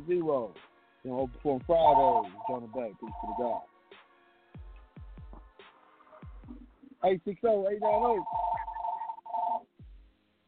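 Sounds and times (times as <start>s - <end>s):
speech: 0.0s - 3.7s, 7.0s - 8.5s
telephone ringing: 2.0s - 3.6s, 7.8s - 9.6s.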